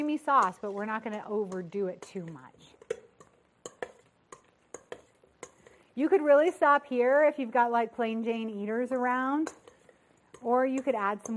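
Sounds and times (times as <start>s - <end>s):
spoon scraping a bowl stirring seasoned potatoes in creamy sauce: 0.0s - 6.7s, 9.4s - 11.3s
speech: 0.1s - 2.8s, 6.0s - 9.6s, 10.4s - 11.3s.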